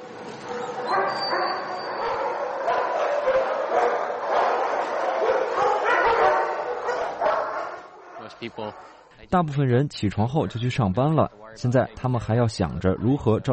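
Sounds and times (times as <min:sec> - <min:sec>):
many dogs barking and yipping excitedly in a kennel: 0:00.3 - 0:09.1
speech: 0:08.4 - 0:13.5.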